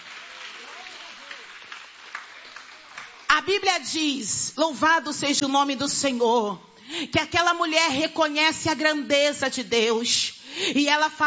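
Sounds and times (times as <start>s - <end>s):
audience applause: 0.0s - 3.3s
speech: 3.4s - 11.2s.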